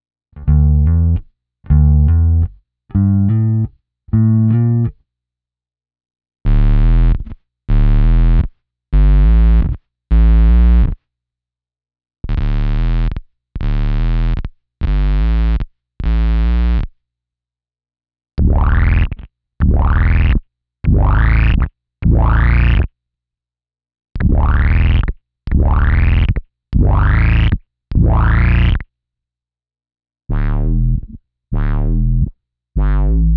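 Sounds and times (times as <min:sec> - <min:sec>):
bass guitar through BOSS OC-2 octave pedal, normal and squared: 0:00.3 - 0:05.0, 0:06.4 - 0:11.0, 0:12.2 - 0:16.9, 0:18.4 - 0:22.9, 0:24.2 - 0:28.9, 0:30.3 - 0:33.3.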